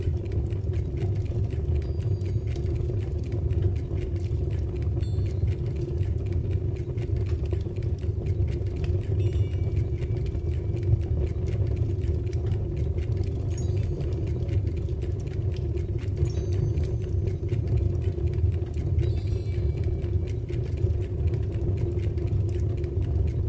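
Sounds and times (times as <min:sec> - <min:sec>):
deep roar of fire with faint crackles and ticks: 0:00.1 - 0:23.4
small machines around the house chiming and ringing: 0:09.2 - 0:10.7, 0:13.5 - 0:14.8, 0:16.2 - 0:17.5, 0:18.9 - 0:20.6.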